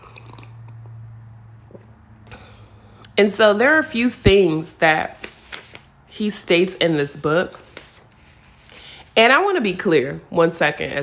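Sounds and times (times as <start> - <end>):
person sipping a drink: 0.0 - 1.0
wet mouth and swallowing noises: 0.0 - 1.0
steady low hum: 0.0 - 11.0
speech: 3.2 - 5.3, 6.2 - 7.6, 9.2 - 11.0.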